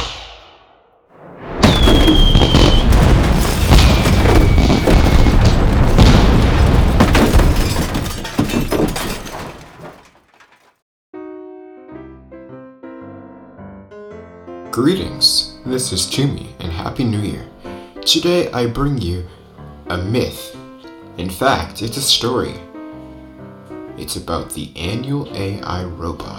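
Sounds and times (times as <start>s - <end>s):
fireworks whistling: 1.2s - 7.0s
fireworks booming and crackling: 1.2s - 9.2s
speech: 14.8s - 17.5s, 18.1s - 20.6s, 21.2s - 22.7s, 24.0s - 26.3s.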